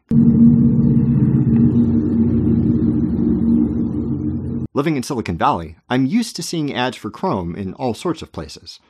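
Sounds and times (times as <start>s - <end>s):
train roaring past an apartment window: 0.0s - 4.7s
speech: 4.8s - 8.8s.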